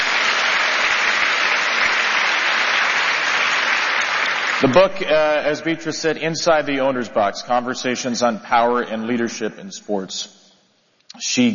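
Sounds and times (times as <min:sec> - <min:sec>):
audience applause: 0:00.0 - 0:05.4
speech: 0:04.6 - 0:10.4, 0:11.1 - 0:11.5.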